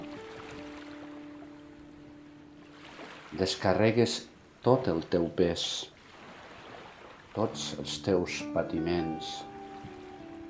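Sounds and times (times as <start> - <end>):
gentle sea waves washing: 0.0 - 4.8, 5.6 - 7.8, 8.4 - 10.4
speech: 3.3 - 5.9, 7.4 - 9.5.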